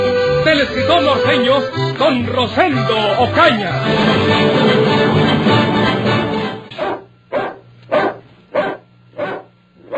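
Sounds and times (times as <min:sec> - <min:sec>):
speech: 0:00.4 - 0:05.6
dog barking at night: 0:06.8 - 0:09.9.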